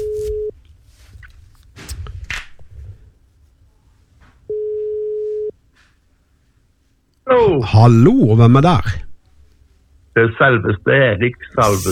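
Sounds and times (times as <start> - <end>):
telephone ringback tone on a phone line: 0.0 - 0.6, 4.5 - 5.6
faint rustling: 0.0 - 7.1
speech: 7.4 - 9.1, 10.2 - 11.9.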